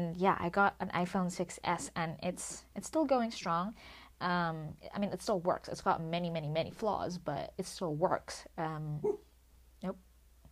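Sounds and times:
speech: 0:00.0 - 0:09.2, 0:09.8 - 0:10.1
dog barking: 0:09.0 - 0:09.2.

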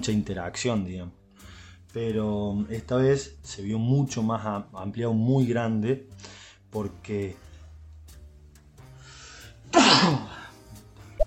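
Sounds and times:
speech: 0:00.0 - 0:01.2, 0:02.0 - 0:07.5
sneeze: 0:09.7 - 0:10.4.

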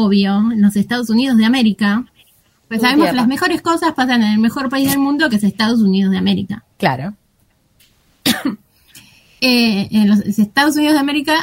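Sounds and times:
speech: 0:00.0 - 0:02.1, 0:02.7 - 0:07.2, 0:09.4 - 0:11.4
faint hiss: 0:00.0 - 0:11.4
single cough: 0:08.2 - 0:08.7.

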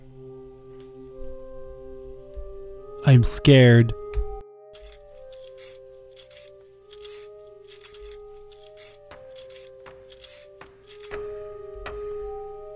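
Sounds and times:
speech: 0:03.1 - 0:04.2
pencil being sharpened: 0:04.8 - 0:11.2.

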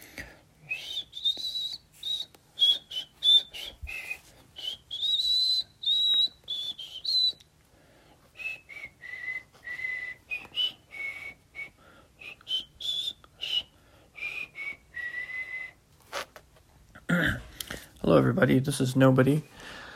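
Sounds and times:
person whistling a slow hymn tune: 0:00.6 - 0:07.5, 0:08.3 - 0:15.8
speech: 0:18.1 - 0:19.6.

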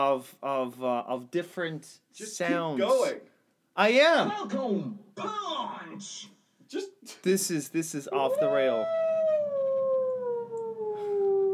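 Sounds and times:
speech: 0:00.0 - 0:09.0
wolf howling: 0:08.1 - 0:11.5.

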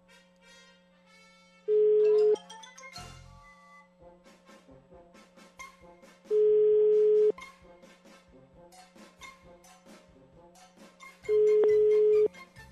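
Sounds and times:
faint continuous tonal background: 0:00.0 - 0:09.8, 0:10.4 - 0:12.7
telephone ringback tones of an unanswered call: 0:01.7 - 0:02.4, 0:06.4 - 0:07.3, 0:11.3 - 0:12.3.

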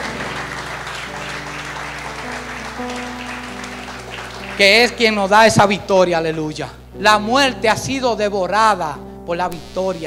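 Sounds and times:
crowd applauding in praise of Christ: 0:00.0 - 0:05.4
sustained low musical tones: 0:00.0 - 0:10.0
speech: 0:04.6 - 0:10.0.

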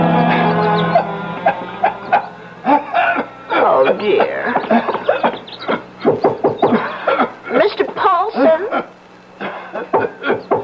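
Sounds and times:
laughter: 0:00.2 - 0:07.7
man coughing harshly: 0:02.7 - 0:04.1, 0:04.7 - 0:07.6, 0:08.5 - 0:10.5.

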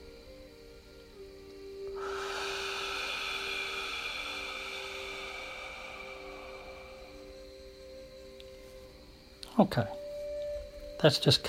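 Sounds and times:
slow nasal inhale and long exhale: 0:01.2 - 0:09.3
speech: 0:09.6 - 0:10.0, 0:11.0 - 0:11.4.

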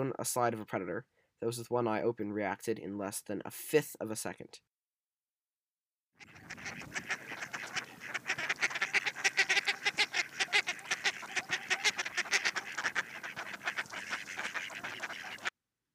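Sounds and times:
speech: 0:00.0 - 0:04.7
mallard duck Anas platyrhynchos quacking: 0:06.2 - 0:15.5.

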